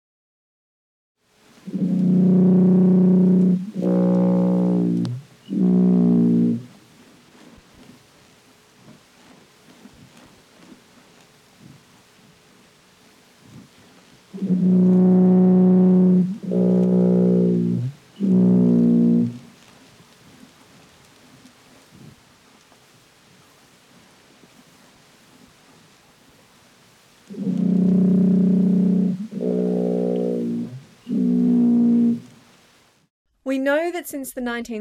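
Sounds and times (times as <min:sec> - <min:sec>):
faint hiss: 0:01.2 - 0:34.7
blue whale calls sped up eight times: 0:01.6 - 0:06.8, 0:14.3 - 0:19.6, 0:27.3 - 0:32.4
speech: 0:33.9 - 0:34.7.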